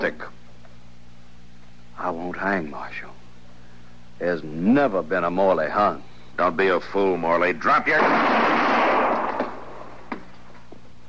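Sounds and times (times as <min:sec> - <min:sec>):
speech: 0:00.0 - 0:00.4, 0:02.1 - 0:03.1, 0:04.2 - 0:08.4
gunshots during a confrontation: 0:07.8 - 0:09.9.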